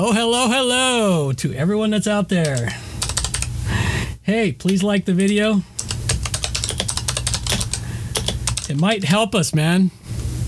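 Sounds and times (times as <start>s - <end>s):
speech: 0.0s - 2.8s, 4.3s - 5.7s, 8.7s - 10.0s
low constant hum: 0.0s - 10.4s
typing on a computer keyboard: 2.5s - 3.5s, 4.6s - 9.1s.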